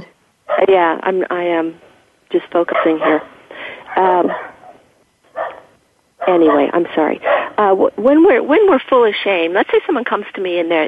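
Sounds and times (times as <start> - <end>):
speech: 0.6 - 3.4, 4.0 - 4.5, 6.3 - 10.8
dog barking at a stranger: 2.7 - 3.3, 4.3 - 4.8, 5.4 - 7.6.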